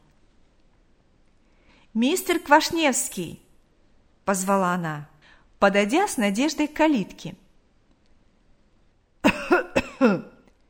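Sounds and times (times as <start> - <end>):
speech: 1.9 - 3.4, 4.3 - 7.4, 10.0 - 10.3
elderly man's rough hacking cough: 9.2 - 10.4.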